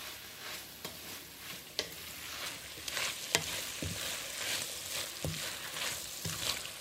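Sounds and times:
shredded chicken and vegetables frying in a pan: 0:00.0 - 0:06.7
utensil clacking while stirring and mixing: 0:01.7 - 0:06.7.

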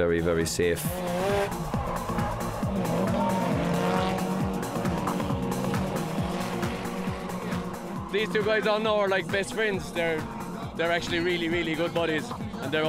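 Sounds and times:
speech: 0:00.0 - 0:01.6, 0:08.1 - 0:12.8
drift car engines revving rapidly: 0:00.4 - 0:12.8
drift car tires squealing and screeching while sliding: 0:00.8 - 0:09.0.

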